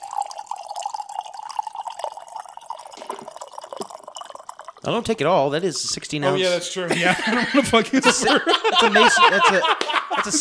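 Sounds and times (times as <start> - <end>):
water pouring from a jar: 0.0 - 6.0
speech: 4.8 - 10.3
laughter: 6.3 - 10.3.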